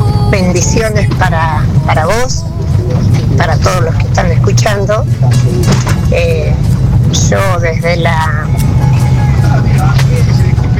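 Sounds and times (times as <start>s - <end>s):
car engine rumble heard from inside the moving vehicle: 0.0s - 10.7s
road noise heard from inside the moving car: 0.0s - 10.7s
speech: 0.5s - 9.1s.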